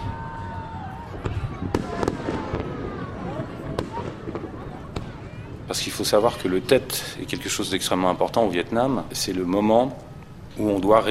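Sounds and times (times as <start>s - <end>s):
crowd shouting and cheering at Lunar New Year midnight in a Hanoi park: 0.0s - 5.6s
fireworks bursting at Lunar New Year midnight in a large park in Hanoi: 1.0s - 6.0s
fireworks whistling: 1.2s - 5.3s
speech: 5.7s - 11.0s.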